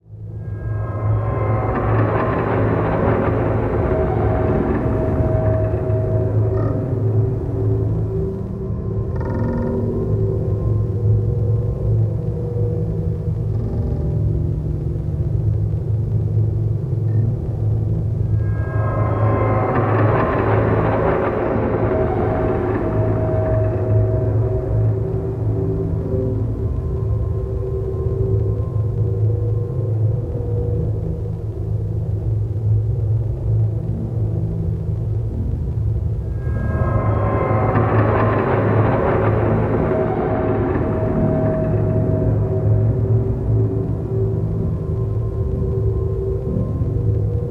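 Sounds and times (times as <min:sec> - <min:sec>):
gated drone: 0:00.0 - 0:47.4.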